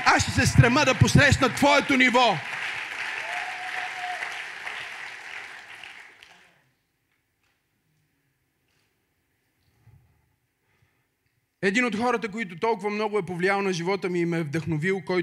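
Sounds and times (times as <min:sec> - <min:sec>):
church congregation applauding: 0:00.0 - 0:06.6
speech: 0:00.2 - 0:02.6, 0:11.6 - 0:15.2.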